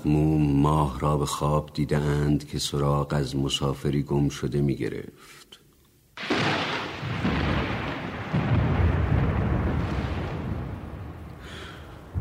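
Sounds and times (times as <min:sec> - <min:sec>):
speech: 0:00.0 - 0:05.4
deep rolls of thunder rumbling: 0:06.2 - 0:12.1
heavy rain pouring: 0:06.2 - 0:12.1.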